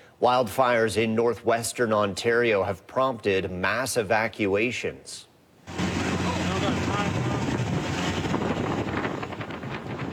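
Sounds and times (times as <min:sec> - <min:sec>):
speech: 0:00.2 - 0:05.8
boat motor droning on water: 0:05.7 - 0:10.1
wind roaring over the microphone: 0:05.7 - 0:10.1.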